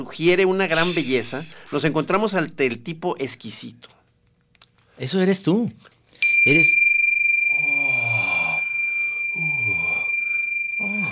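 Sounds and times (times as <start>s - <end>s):
speech: 0.0s - 4.0s, 5.0s - 6.8s
Tibetan cymbals ringing: 0.7s - 2.0s, 6.2s - 11.1s.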